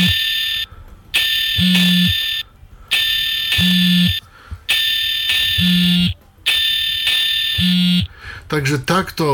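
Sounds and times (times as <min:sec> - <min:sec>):
alarm clock with shrill electronic tone and low buzzing pulse: 0:00.0 - 0:08.1
speech: 0:08.5 - 0:09.3.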